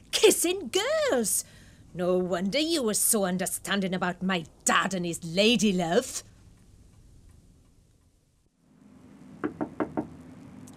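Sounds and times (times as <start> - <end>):
speech: 0.2 - 6.3
firm knocks on a front door: 9.4 - 10.1.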